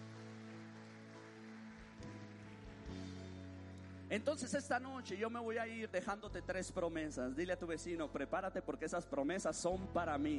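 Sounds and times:
congregation applauding: 0.0s - 5.9s
speech: 4.1s - 10.3s.

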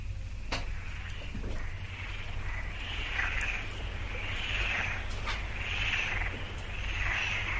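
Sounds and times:
constant low rumble: 0.0s - 7.5s
frogs calling in an outdoor chorus with rising trills: 0.4s - 7.5s.

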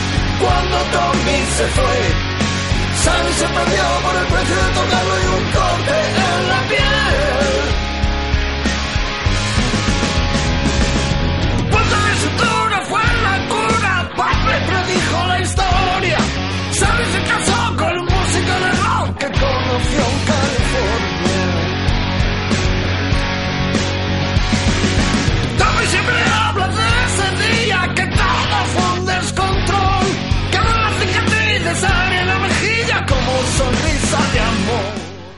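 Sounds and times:
rock song with full-band instruments, bass line and singing voice: 0.0s - 35.3s
speech: 0.7s - 2.3s, 3.0s - 5.2s.

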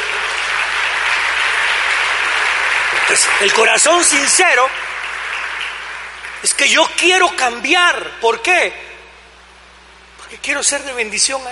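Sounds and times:
audience applauding: 0.0s - 7.2s
speech: 3.1s - 4.8s, 6.4s - 8.8s, 10.4s - 11.5s.

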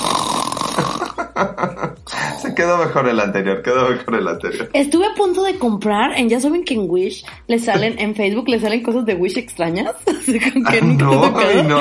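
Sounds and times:
person imitating gentle snoring with their voice: 0.0s - 1.2s
laughter: 0.8s - 3.2s, 10.1s - 11.7s
speech: 1.4s - 11.7s.

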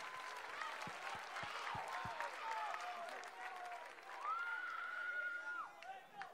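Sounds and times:
audience clapping: 0.0s - 6.3s.

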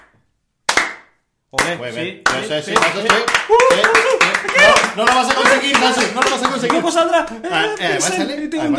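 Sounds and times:
dense rapid hand clapping like enthusiastic applause: 0.0s - 7.0s
speech: 1.5s - 8.7s
laughter: 3.5s - 8.7s.

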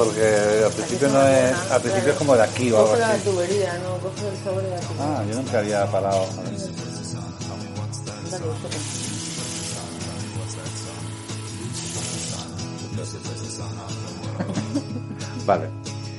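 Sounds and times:
laughter: 0.0s - 3.4s, 14.1s - 15.6s
running water: 0.0s - 6.4s, 8.3s - 12.9s
speech: 0.0s - 6.8s, 8.3s - 9.0s, 13.0s - 15.9s.

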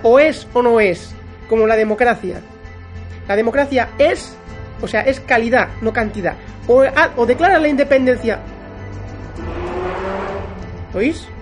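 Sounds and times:
speech: 0.0s - 2.5s, 3.3s - 8.5s, 10.9s - 11.4s
car or motorbike accelerating past at full throttle: 9.3s - 10.9s.

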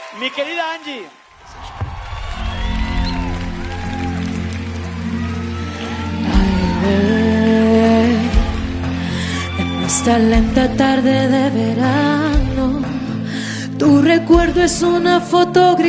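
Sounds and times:
steady applause and cheering: 0.0s - 10.8s
speech: 0.1s - 1.2s, 10.0s - 12.9s, 13.8s - 15.8s.

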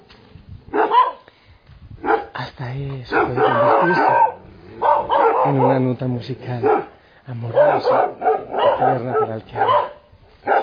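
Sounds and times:
dog barking: 0.7s - 1.3s, 2.0s - 2.4s, 3.1s - 10.6s
speech: 2.6s - 4.4s, 5.4s - 10.6s.

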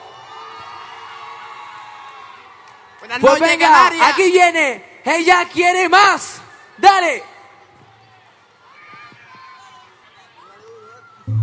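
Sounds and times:
large crowd roaring and cheering: 0.0s - 3.5s, 7.8s - 11.4s
speech: 3.0s - 7.3s.

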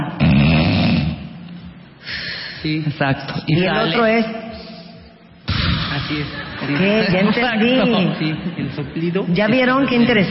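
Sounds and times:
person imitating a snore: 0.2s - 1.3s
speech: 2.6s - 4.4s, 6.1s - 10.2s
laughter: 6.1s - 8.7s.

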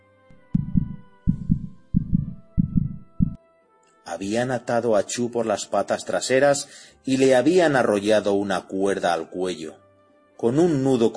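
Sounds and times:
pounding heartbeat sound effect: 0.4s - 3.4s
speech: 4.1s - 9.8s, 10.4s - 11.1s.

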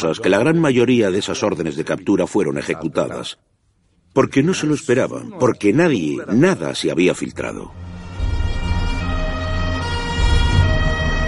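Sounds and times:
speech: 0.0s - 3.5s, 4.2s - 7.9s
police car sirens wailing through streets: 8.2s - 11.2s.

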